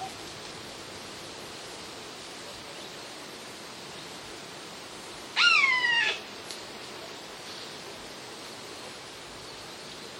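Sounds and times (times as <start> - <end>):
background hiss: 0.0 - 10.1
Eurasian jay mewing alarm call: 5.4 - 6.2.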